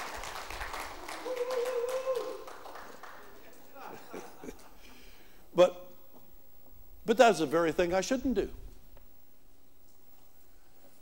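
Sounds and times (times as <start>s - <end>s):
audience applause: 0.0s - 4.0s
room noise: 0.0s - 11.0s
people chuckling: 3.6s - 5.0s
speech: 5.6s - 5.8s, 7.1s - 8.6s.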